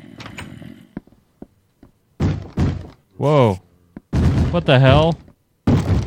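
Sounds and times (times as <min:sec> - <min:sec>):
heavy thuds against a door: 0:02.2 - 0:03.0, 0:04.1 - 0:06.0
speech: 0:03.2 - 0:03.6, 0:04.5 - 0:05.2.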